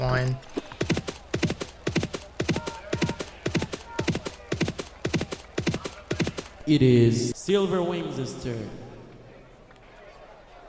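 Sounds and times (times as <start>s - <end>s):
speech: 0.2s - 0.6s, 6.7s - 8.8s
racehorses galloping in a horse racing video game: 0.6s - 6.7s.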